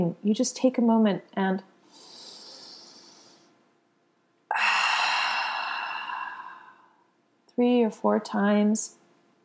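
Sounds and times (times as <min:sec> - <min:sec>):
speech: 0:00.0 - 0:01.7, 0:07.6 - 0:09.0
deep breath during a guided breathing exercise: 0:01.8 - 0:03.6, 0:04.5 - 0:07.2.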